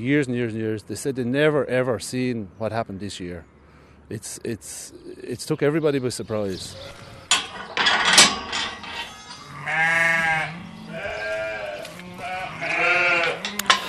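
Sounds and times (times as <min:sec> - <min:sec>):
speech: 0:00.0 - 0:03.5, 0:04.1 - 0:07.0
sheep being fattened bleating in Wicklow: 0:06.5 - 0:07.4, 0:09.0 - 0:13.7.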